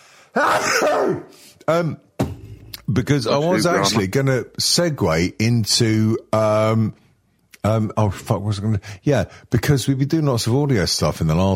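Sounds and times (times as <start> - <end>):
person sneezing loudly after a strained breathy build-up: 0.4 - 1.6
speech: 0.4 - 2.1, 2.9 - 7.0, 7.6 - 11.5.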